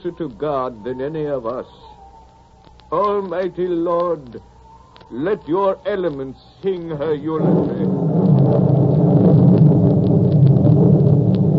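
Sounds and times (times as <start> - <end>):
speech: 0.0 - 2.0, 2.9 - 4.5, 5.1 - 7.9
rolling thunder: 7.3 - 11.5.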